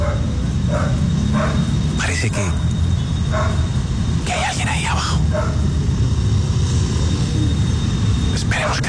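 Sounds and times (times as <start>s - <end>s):
dog barking at rubble of a collapsed apartment block: 0.0s - 1.7s, 3.3s - 3.7s, 5.3s - 5.7s, 8.6s - 8.8s
steady noisy background: 0.0s - 8.8s
speech: 2.2s - 5.8s, 8.4s - 8.8s.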